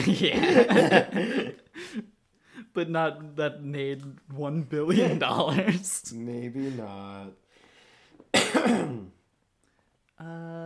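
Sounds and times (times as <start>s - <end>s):
laughter: 0.0s - 2.0s
speech: 0.0s - 2.1s, 2.8s - 7.4s, 8.3s - 9.2s, 10.2s - 10.6s
loud raspy cough: 8.3s - 9.2s.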